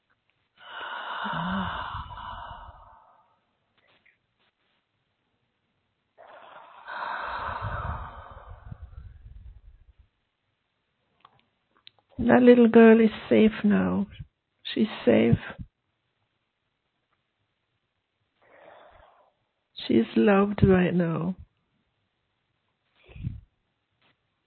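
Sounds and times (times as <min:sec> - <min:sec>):
slow deep breaths close to the microphone: 0:00.6 - 0:03.6, 0:06.2 - 0:09.9, 0:18.4 - 0:19.5
speech: 0:01.2 - 0:01.8, 0:12.3 - 0:15.6, 0:19.9 - 0:21.4.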